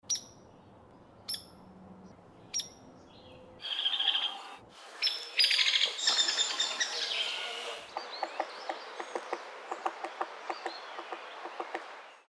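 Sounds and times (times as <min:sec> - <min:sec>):
hairy woodpecker: 0:03.6 - 0:12.2.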